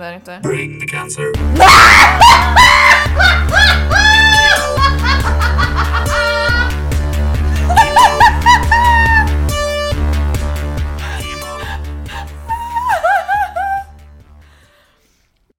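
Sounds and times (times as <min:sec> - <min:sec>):
speech: 0:00.0 - 0:04.8
person screaming in high wavering shrieks and squeals: 0:01.5 - 0:04.8, 0:11.6 - 0:13.9
excited laughter: 0:01.6 - 0:09.5, 0:11.6 - 0:14.0.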